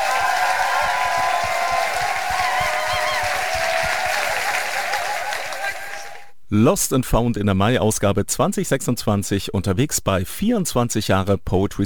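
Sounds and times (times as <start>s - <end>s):
audience cheers and whoops at a poetry slam in Erlangen: 0.0s - 6.3s
large audience clapping at a poetry slam in Erlangen: 0.0s - 6.3s
speech: 6.5s - 11.8s.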